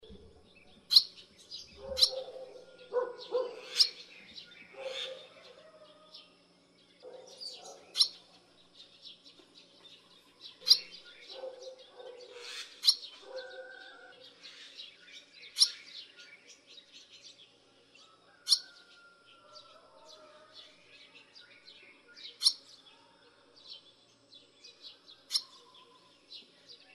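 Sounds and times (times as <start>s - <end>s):
barn swallow calling: 0.0s - 5.9s, 7.1s - 8.3s, 10.6s - 16.6s, 18.4s - 18.9s, 22.2s - 22.7s, 25.2s - 25.9s.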